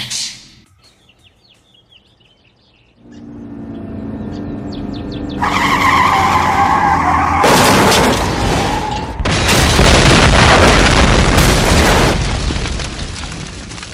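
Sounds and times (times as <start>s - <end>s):
car skidding with high tire squeal: 5.4s - 9.2s
car slamming into something with crunching impacts: 5.4s - 12.5s
crashing debris: 7.4s - 13.9s.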